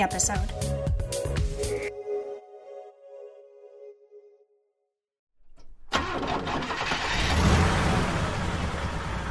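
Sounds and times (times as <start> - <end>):
speech: 0.0 - 1.4
6.2-liter V8 engine of a 2019 GMC Sierra Denali pickup truck revving: 6.0 - 9.2.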